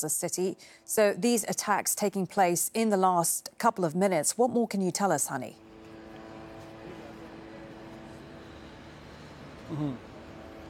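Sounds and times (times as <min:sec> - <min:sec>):
speech: 0:00.0 - 0:05.7, 0:09.7 - 0:10.1
mechanical hum of many drones overhead above Gaza City: 0:05.6 - 0:10.6.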